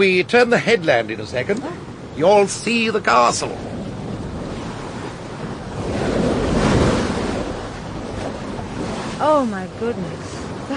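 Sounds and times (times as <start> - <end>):
speech: 0.0 - 3.7, 9.2 - 10.7
gusting wind heard from a moving boat: 0.0 - 10.7
sea waves heard from a moving boat: 0.0 - 10.7.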